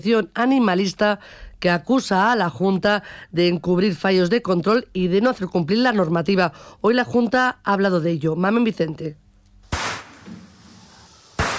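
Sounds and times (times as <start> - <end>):
speech: 0.0 - 9.2
gunshots at a slaughterhouse in Segovia: 9.7 - 10.3, 11.4 - 11.5.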